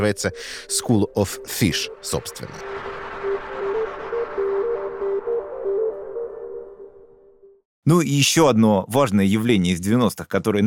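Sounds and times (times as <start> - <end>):
speech: 0.0 - 2.9, 7.9 - 10.6
short bright synth tones in an electronic track: 0.0 - 7.6.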